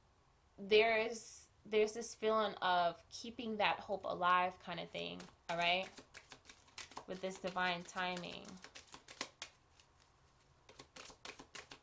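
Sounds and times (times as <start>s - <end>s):
speech: 0.6s - 6.2s, 7.1s - 8.7s
tarot cards being shuffled: 4.9s - 11.8s.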